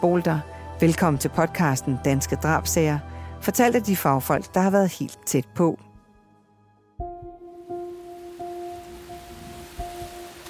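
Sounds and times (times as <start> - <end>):
speech: 0.0 - 5.9
heavy rain: 7.7 - 10.4
strong wind: 8.9 - 10.4.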